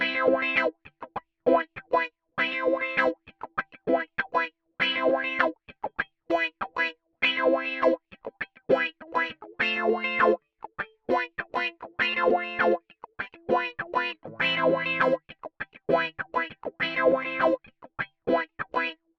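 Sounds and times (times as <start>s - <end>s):
rhythm guitar with auto-wah effect: 0.0s - 19.0s.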